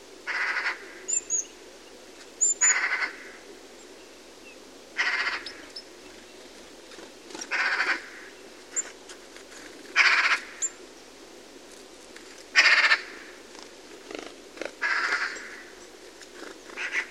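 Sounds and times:
Eurasian magpie (Pica pica) calling with loud coarse grating bursts: 0:00.3 - 0:00.8, 0:02.6 - 0:03.2, 0:05.0 - 0:05.6, 0:07.5 - 0:08.3, 0:10.0 - 0:10.6, 0:12.6 - 0:13.1, 0:14.8 - 0:15.7, 0:16.8 - 0:17.0.

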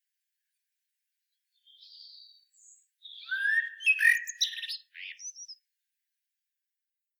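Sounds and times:
common blackbird Turdus merula singing: 0:01.6 - 0:05.6.

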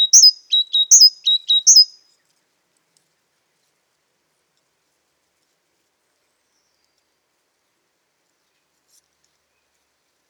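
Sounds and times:
great tit Parus major calling a high downslurred whistle and short lower notes: 0:00.0 - 0:02.0.

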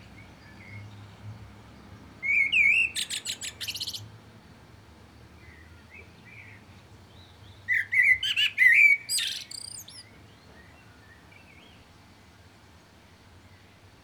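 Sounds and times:
common blackbird Turdus merula singing fluty phrases with squeaky trills: 0:02.2 - 0:04.1, 0:05.5 - 0:11.8.

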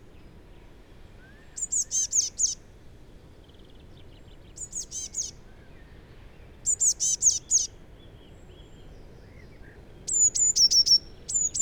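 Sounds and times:
quiet low background hiss: 0:00.0 - 0:11.5
Eurasian blue tit Cyanistes caeruleus giving high sharp notes and descending chips: 0:01.6 - 0:02.6, 0:04.6 - 0:05.3, 0:06.7 - 0:07.7, 0:10.1 - 0:11.5.

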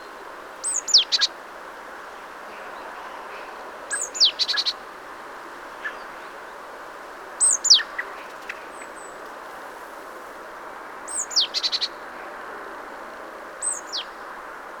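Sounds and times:
great tit Parus major calls: 0:00.0 - 0:01.4, 0:02.6 - 0:04.8, 0:07.4 - 0:09.2, 0:11.1 - 0:12.0, 0:13.6 - 0:14.2
background hiss: 0:00.0 - 0:14.7.

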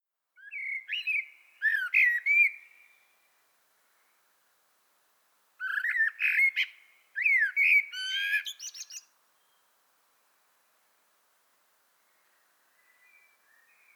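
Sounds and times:
common blackbird Turdus merula whistled warbling song: 0:00.4 - 0:03.1, 0:05.6 - 0:09.7, 0:12.0 - 0:13.9.

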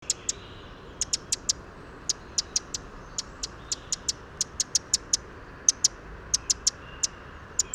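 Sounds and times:
Eurasian wren Troglodytes troglodytes clicking calls: 0:00.0 - 0:07.7.

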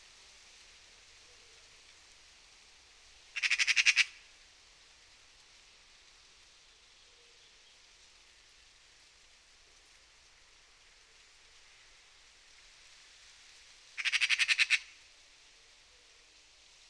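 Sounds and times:
steady hiss: 0:00.0 - 0:16.8
Eurasian magpie rasping chatter: 0:14.0 - 0:14.8.

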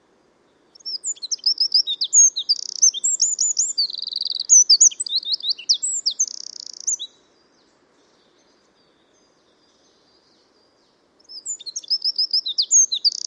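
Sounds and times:
Eurasian wren Troglodytes troglodytes singing: 0:00.7 - 0:13.2.

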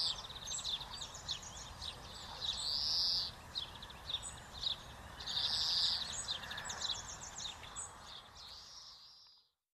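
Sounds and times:
European greenfinch Chloris chloris song: 0:00.0 - 0:09.6.

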